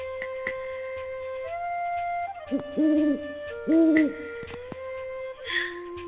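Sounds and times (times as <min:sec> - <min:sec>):
birds calling in low hooting notes: 0:02.4 - 0:06.0.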